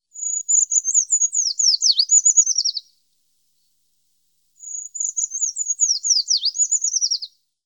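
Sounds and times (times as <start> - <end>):
Certhia familiaris treecreeper calling: 0.1 - 3.0, 4.6 - 7.4.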